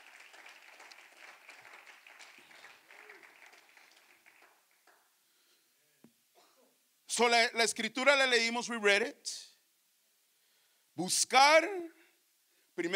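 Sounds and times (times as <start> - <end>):
large church audience applauding: 0.0 - 5.1
speech: 7.2 - 9.5, 11.0 - 12.0, 12.8 - 12.9.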